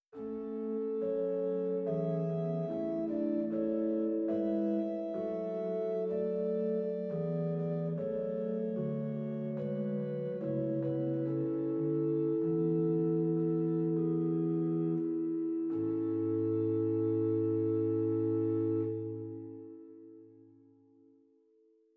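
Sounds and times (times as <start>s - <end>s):
Bovenpositief Holpyp 8 organ stop in Zwolle: 0.2s - 20.0s.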